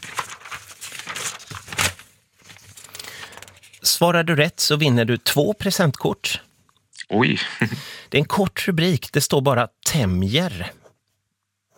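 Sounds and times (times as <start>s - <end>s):
paper pages rustling as they are flipped through: 0.0s - 3.8s
speech: 3.8s - 6.5s, 7.1s - 10.8s.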